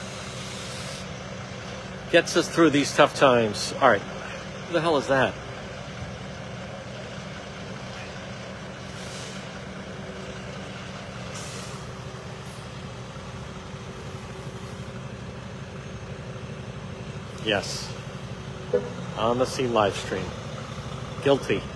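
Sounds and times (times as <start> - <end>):
air brake hisses: 0.0 - 1.2, 8.9 - 9.6, 11.3 - 12.7
heavy tow truck engine rumbling: 0.0 - 21.7
speech: 2.1 - 5.4, 17.5 - 17.9, 19.2 - 20.4, 21.2 - 21.7.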